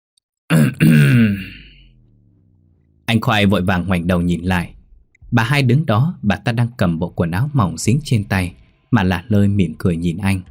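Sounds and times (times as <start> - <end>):
woman clearing her throat: 0.5 - 1.8
speech: 0.7 - 1.5, 3.2 - 10.4.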